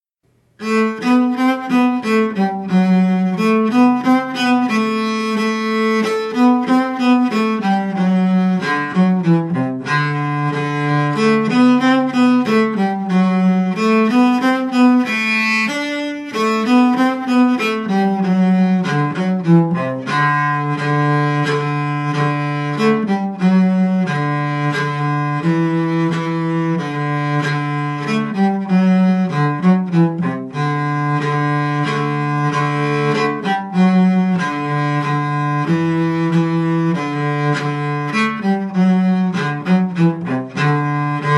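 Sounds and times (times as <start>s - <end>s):
cello: 0.6s - 41.3s.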